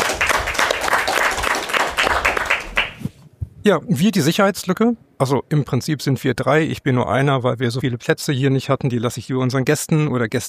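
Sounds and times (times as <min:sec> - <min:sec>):
audience applause: 0:00.0 - 0:03.0
speech: 0:03.6 - 0:10.4.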